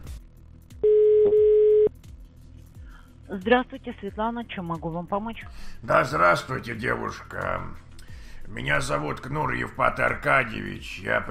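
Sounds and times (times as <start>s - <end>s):
telephone tone while placing a call: 0.8s - 1.9s
speech: 3.3s - 7.9s, 8.5s - 11.2s.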